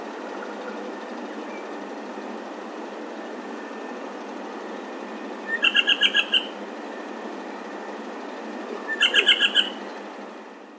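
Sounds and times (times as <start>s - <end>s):
bird chirping: 5.4s - 7.0s, 8.7s - 9.9s.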